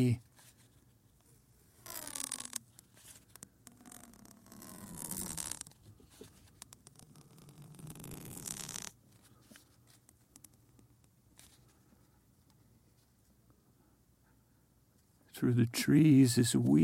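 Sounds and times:
speech: 0.0 - 0.2, 15.4 - 16.8
tape being peeled and ripped: 1.7 - 9.0.

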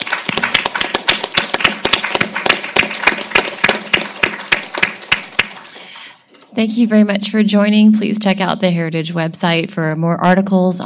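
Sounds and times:
room full of people clapping: 0.0 - 6.2
speech: 6.6 - 10.8.

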